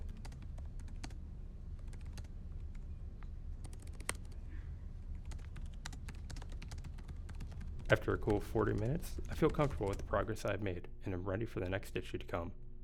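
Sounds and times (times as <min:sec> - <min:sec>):
typing on a laptop keyboard while writing articles: 0:00.0 - 0:01.2, 0:01.8 - 0:02.8, 0:03.6 - 0:04.4, 0:05.1 - 0:10.1
low hum: 0:00.0 - 0:12.8
speech: 0:07.9 - 0:12.6.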